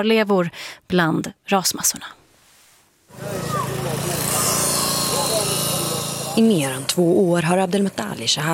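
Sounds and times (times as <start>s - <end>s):
speech: 0.0s - 2.2s, 6.4s - 8.5s
power saw cutting through steel rebar: 3.1s - 8.5s.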